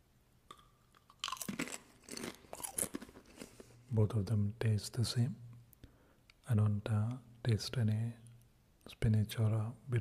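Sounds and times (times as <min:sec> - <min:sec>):
crisp snack being bitten and chewed: 0:00.5 - 0:03.8
speech: 0:03.9 - 0:05.4, 0:06.5 - 0:08.2, 0:08.9 - 0:09.9.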